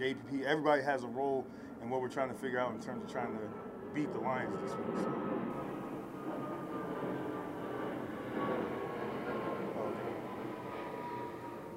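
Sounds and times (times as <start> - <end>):
speech: 0.0 - 5.6
airplane passing overhead: 0.0 - 11.7
faint whining tone: 2.7 - 11.7.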